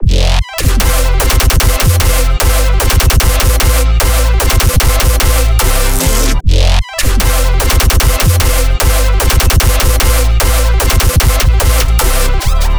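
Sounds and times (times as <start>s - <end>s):
bass loop in C major: 0.0s - 12.7s.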